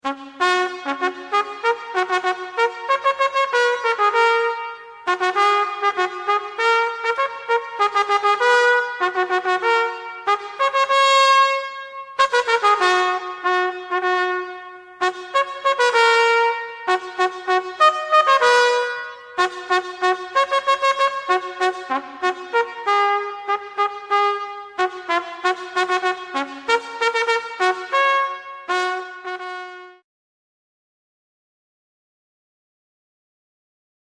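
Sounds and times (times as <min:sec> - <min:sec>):
trumpet: 0:00.0 - 0:30.0.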